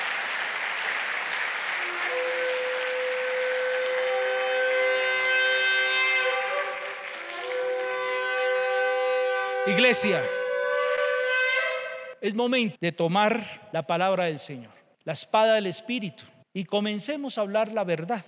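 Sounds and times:
crowd applause and cheering: 0.0 - 11.1
shofar ram's horn blown loudly in long sustained blasts: 1.7 - 12.2
speech: 9.7 - 10.4, 12.2 - 18.2.

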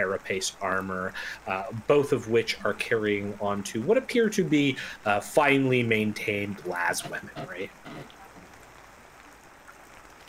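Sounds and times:
speech: 0.0 - 8.2
soft steady rain pattering outdoors: 0.0 - 10.2.

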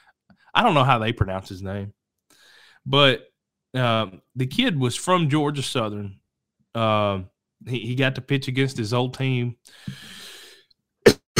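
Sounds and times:
speech: 0.6 - 2.0, 2.8 - 6.2, 6.8 - 10.2
soft breathy rasp: 9.7 - 10.7
person coughing from something stuck in their throat: 11.1 - 11.3.

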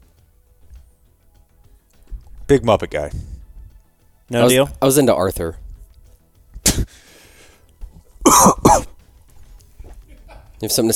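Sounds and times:
speech: 2.5 - 3.3, 4.3 - 5.6, 10.6 - 10.9
sharp raspy cough: 6.6 - 6.9, 8.2 - 9.0
wheezy exhale: 6.8 - 7.7.

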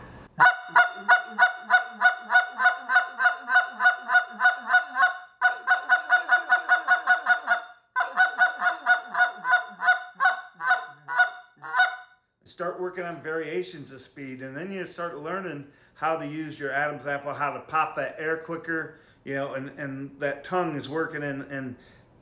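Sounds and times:
goose call blown in fast clucks: 0.4 - 12.0
speech: 13.0 - 22.0.

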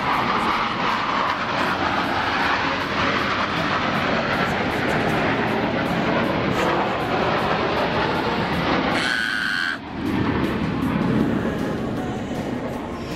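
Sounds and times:
airplane flying loudly overhead: 0.0 - 13.1
short tonal burst: 8.9 - 9.8.

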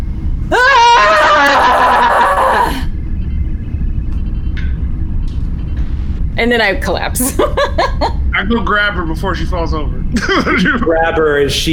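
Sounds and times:
low steady rumble: 0.0 - 11.7
laughter: 0.5 - 2.8, 7.2 - 8.2, 10.1 - 11.2
loud war cry scream from a single voice: 0.5 - 2.8
speech: 6.4 - 11.7.

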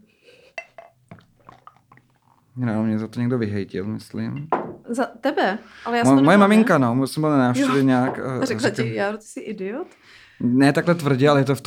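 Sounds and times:
drinking glass of water clinking as it is handled: 0.5 - 2.4, 4.0 - 4.8, 7.6 - 9.0
speech: 2.6 - 11.6
laughter: 5.8 - 9.1.

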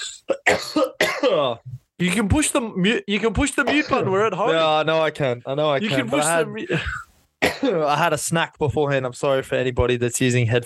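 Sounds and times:
person coughing: 0.0 - 1.6, 3.6 - 4.1, 6.7 - 7.9
speech: 0.3 - 0.8, 1.4 - 10.6.

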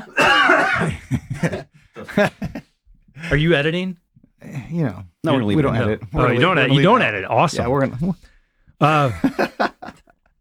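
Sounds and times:
loud harsh cough and choppy coughs: 0.0 - 2.3
throat clearing: 0.0 - 2.3
laughter: 0.0 - 3.4, 8.8 - 10.2
speech: 2.2 - 2.4, 3.3 - 4.0, 4.7 - 9.6.

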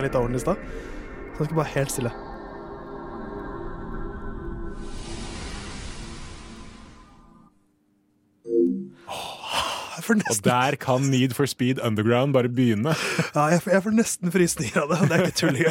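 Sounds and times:
speech: 0.0 - 2.3, 10.1 - 15.6
deep sustained synthetic drone with airy shimmer: 0.0 - 7.5
rushing synthetic swell: 0.0 - 7.5
PlayStation 2 console startup sound: 8.5 - 9.1
laughter: 9.9 - 11.3, 12.9 - 13.7, 14.5 - 15.6.

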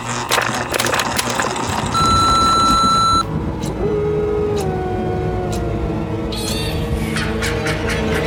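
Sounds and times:
clicks: 0.0 - 3.3
busy rumbling noise: 0.0 - 8.1
answering machine beep for callers to leave a message: 1.9 - 3.3.

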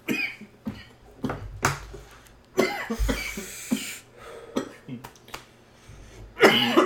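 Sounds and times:
person coughing after taking a hit: 0.0 - 0.9, 2.6 - 5.0, 6.4 - 6.8
breathy gasps: 3.1 - 4.6.

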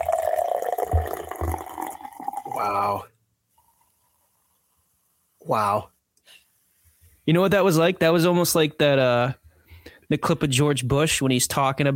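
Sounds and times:
drink pouring into a glass: 0.0 - 3.0
speech: 2.6 - 3.1, 5.4 - 6.4, 7.2 - 9.4, 10.1 - 11.9.

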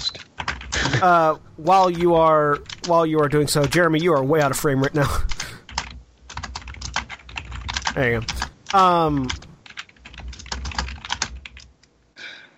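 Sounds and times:
loud rapid typing on a computer keyboard: 0.0 - 1.0, 5.2 - 11.9
speech: 1.0 - 5.3, 8.0 - 9.4.

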